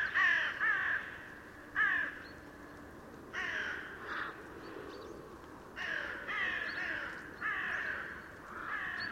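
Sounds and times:
Carrion crow Corvus corone cawing: 0.0 - 2.2, 3.3 - 4.4, 5.8 - 9.1.

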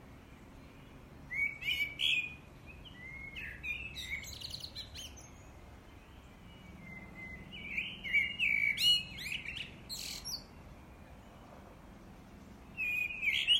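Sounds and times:
common blackbird Turdus merula song: 0.0 - 13.5.

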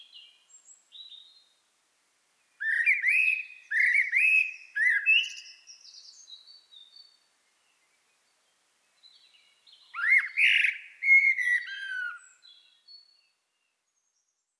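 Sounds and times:
common blackbird singing: 2.6 - 7.2, 9.0 - 13.3.

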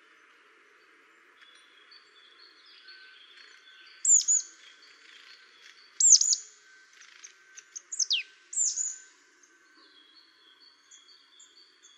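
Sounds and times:
faint steady background noise: 0.0 - 11.9
Marsh tit calls: 4.1 - 4.4, 6.0 - 6.4, 7.8 - 9.0.

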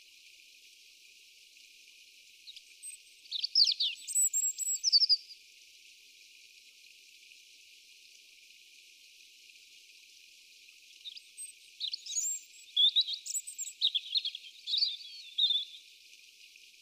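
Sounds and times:
European robin song: 2.5 - 5.4, 11.0 - 16.0.

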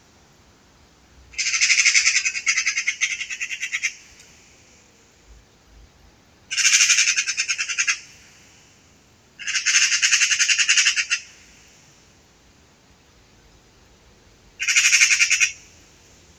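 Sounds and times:
Eurasian magpie Pica pica chattering in dry rattling bursts: 1.4 - 4.0, 6.5 - 8.1, 9.4 - 11.3, 14.6 - 15.6.

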